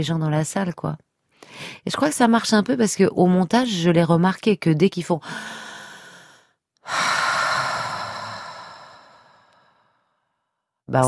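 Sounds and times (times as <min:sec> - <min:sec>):
speech: 0:00.0 - 0:05.6
slow deep breath in and out: 0:05.2 - 0:10.7.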